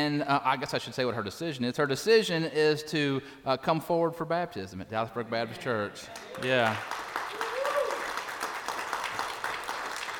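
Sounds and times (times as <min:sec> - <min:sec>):
speech: 0:00.0 - 0:07.1
church audience applauding for a woman coming forward for baptism: 0:06.2 - 0:10.1.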